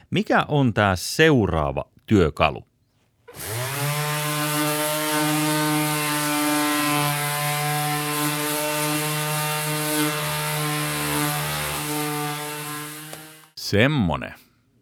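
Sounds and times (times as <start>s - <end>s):
speech: 0.1s - 2.7s, 3.3s - 3.6s, 13.7s - 14.4s
random orbital sander running with loud motor whine: 3.3s - 13.6s.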